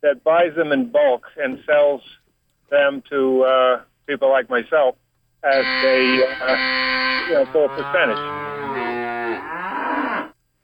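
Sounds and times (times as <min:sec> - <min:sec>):
speech: 0:00.0 - 0:08.6
cow mooing: 0:05.5 - 0:10.4.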